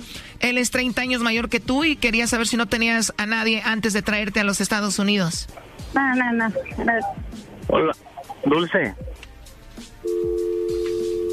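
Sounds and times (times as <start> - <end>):
murky noise: 0.0 - 11.3
speech: 0.5 - 9.1
steady low-pitched telephone line tone after hang-up: 10.0 - 11.3.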